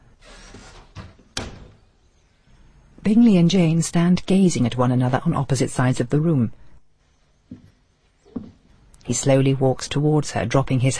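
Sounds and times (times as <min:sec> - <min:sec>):
door closing: 0:00.4 - 0:01.9
speech: 0:03.1 - 0:06.6, 0:09.1 - 0:10.9.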